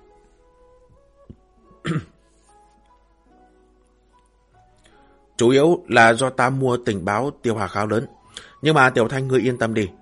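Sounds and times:
hasty dry cough of a team leader: 1.8 - 2.2
speech: 1.9 - 2.2, 5.4 - 10.0.

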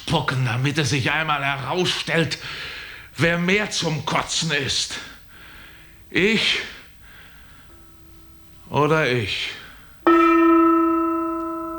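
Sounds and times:
speech: 0.1 - 5.1, 6.1 - 6.8, 8.7 - 9.6
gong struck and ringing: 10.1 - 11.7.

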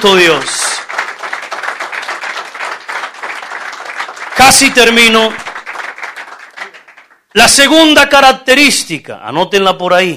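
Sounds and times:
speech: 0.0 - 0.7, 4.4 - 5.4, 7.4 - 10.1
church congregation applauding: 0.0 - 7.6.

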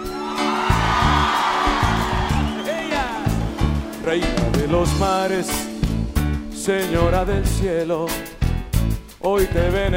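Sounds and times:
crowd shouting and cheering at a live church worship concert: 0.0 - 5.3
speech: 4.1 - 5.7, 6.6 - 8.4, 9.2 - 9.9.

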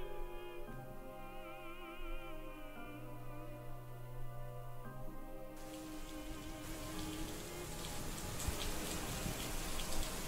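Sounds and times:
soft musical tones: 0.0 - 10.2
rain pouring down in a sudden downpour: 5.6 - 10.2.

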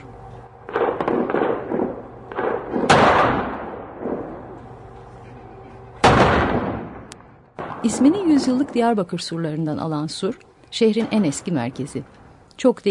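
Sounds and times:
artillery fire booming over the old Sur district of Diyarbakır: 0.6 - 4.6, 6.0 - 9.0
speech: 7.8 - 12.9.

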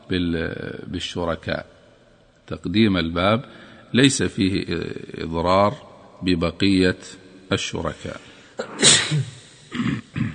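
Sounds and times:
speech: 0.1 - 1.8, 2.5 - 10.0
person sneezing: 8.6 - 10.3.

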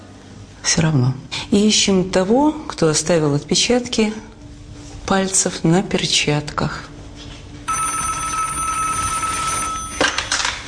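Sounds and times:
speech: 0.7 - 4.3, 5.1 - 6.9
telephone ringing with a long electronic tone: 7.7 - 10.4.

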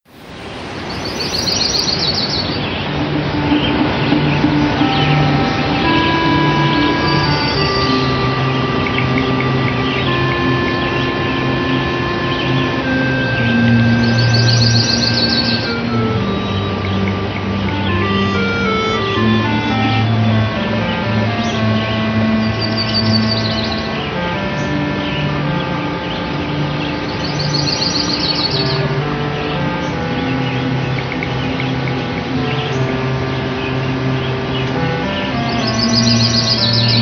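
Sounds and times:
chirping bird sound effects in video game music: 0.0 - 36.9
upbeat synthesized grassland-level video game background music: 0.0 - 36.9.

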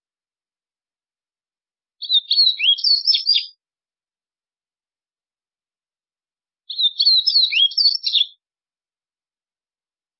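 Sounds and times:
White-throated seedeater song: 2.0 - 3.6, 6.7 - 8.4.

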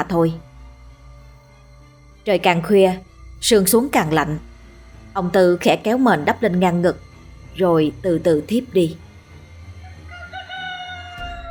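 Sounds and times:
speech: 0.0 - 0.5, 2.3 - 4.5, 5.2 - 9.0
rooster crowing in the night: 9.4 - 11.4.

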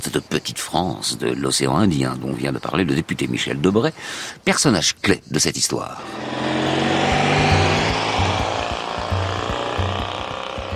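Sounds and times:
speech: 0.0 - 6.7
Citroën 2CV engine drone on a winding road in Réunion: 6.0 - 10.7.

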